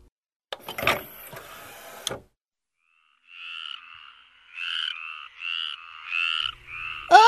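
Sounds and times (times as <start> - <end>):
tree frogs croaking: 2.7 - 7.2.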